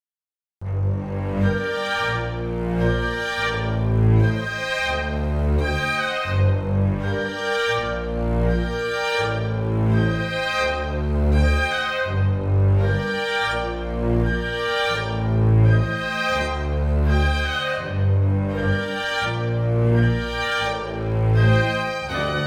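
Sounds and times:
strings: 0.7 - 22.4
woodwinds: 1.1 - 22.4.

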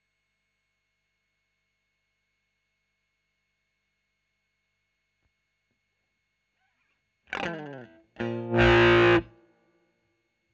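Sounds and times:
Royer overdriven electric guitar: 7.3 - 9.3.

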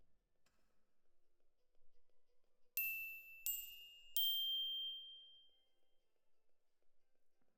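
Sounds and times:
glockenspiel in jazz for piano: 2.8 - 5.8.

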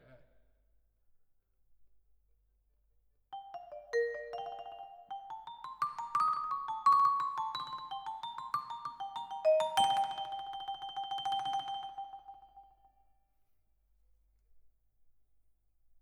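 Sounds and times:
vibraphone: 3.4 - 12.8.

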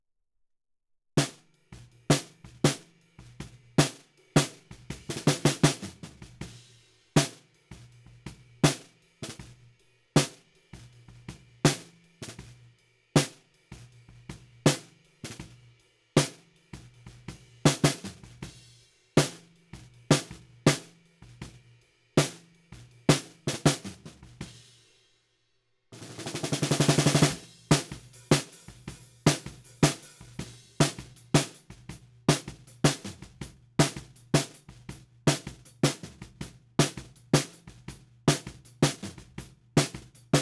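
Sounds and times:
snare drum bottom: 1.2 - 1.5, 2.1 - 6.6, 7.2 - 7.5, 8.6 - 9.6, 10.2 - 10.5, 11.7 - 12.6, 13.2 - 13.4, 14.7 - 15.6, 16.2 - 16.5, 17.1 - 18.6, 19.2 - 21.0, 22.2 - 24.6, 26.0 - 40.4.

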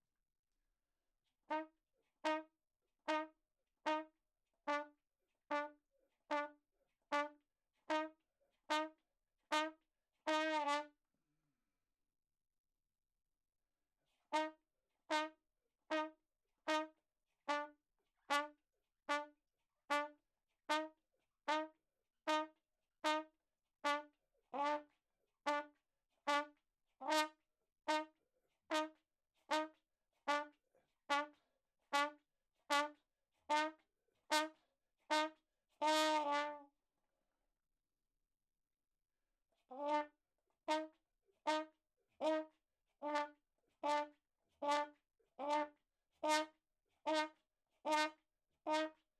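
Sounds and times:
ragtime trumpet: 1.5 - 2.5, 3.1 - 4.1, 4.7 - 4.9, 5.5 - 10.9, 14.3 - 18.5, 19.1 - 19.3, 19.9 - 24.9, 25.5 - 36.7, 39.7 - 49.0.

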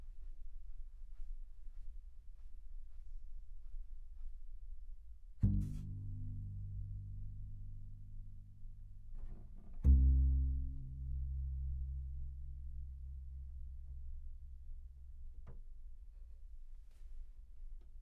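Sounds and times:
synth bass: 5.5 - 15.4.

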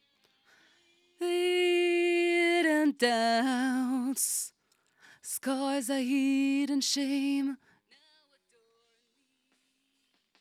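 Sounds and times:
person singing: 1.2 - 4.5, 5.2 - 7.6.

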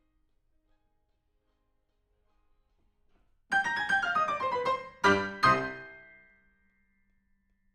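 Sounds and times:
piano: 3.5 - 6.4.

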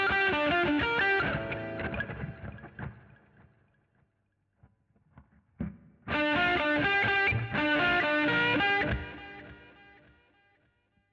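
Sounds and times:
guitar solo: 0.0 - 3.3, 6.1 - 10.1.

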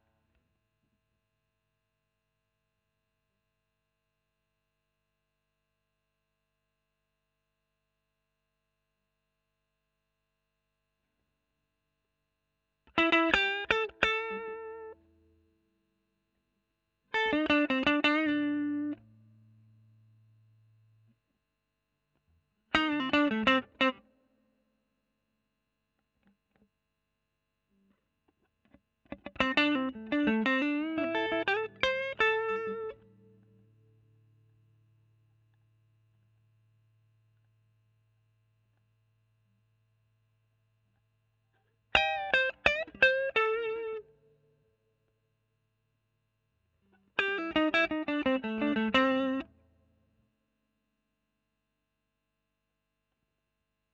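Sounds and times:
overdriven electric guitar: 12.9 - 15.0, 17.1 - 19.2, 22.7 - 24.0, 29.1 - 33.6, 42.0 - 44.2, 46.9 - 49.6.

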